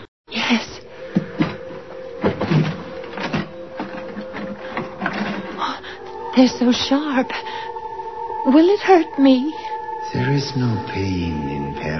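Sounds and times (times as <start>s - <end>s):
speech: 0.5s - 0.7s, 6.4s - 7.7s, 8.4s - 11.9s
drawer sliding open: 1.4s - 5.6s.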